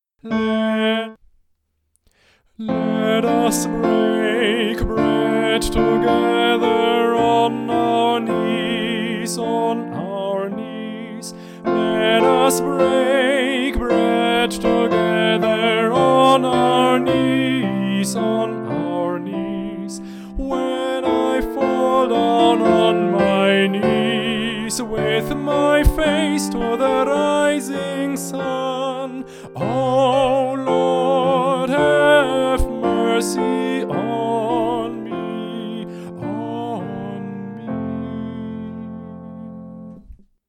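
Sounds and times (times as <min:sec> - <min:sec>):
tenor singing: 0:00.0 - 0:01.2, 0:02.5 - 0:40.2
piano: 0:00.2 - 0:01.2, 0:02.6 - 0:40.2.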